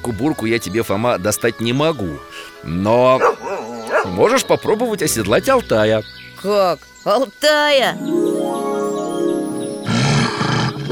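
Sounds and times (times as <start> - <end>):
speech: 0.0 - 3.4, 4.0 - 8.2
steady tonal background: 1.6 - 10.9
huge wolf growling: 2.6 - 4.7, 9.9 - 10.9.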